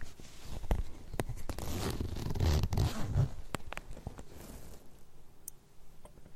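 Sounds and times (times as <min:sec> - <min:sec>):
jacket zipper being undone: 0:01.4 - 0:03.4, 0:04.1 - 0:05.0.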